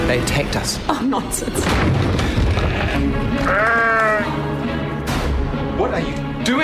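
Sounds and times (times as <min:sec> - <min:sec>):
speech: 0:00.1 - 0:04.5, 0:05.8 - 0:06.6
sheep bleating: 0:02.5 - 0:04.4.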